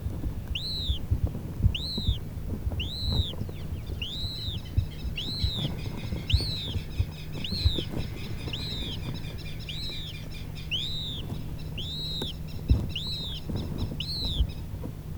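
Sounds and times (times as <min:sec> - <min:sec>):
steady low rumbling background noise: 0:00.0 - 0:15.1
noble snipe calling: 0:00.5 - 0:14.6.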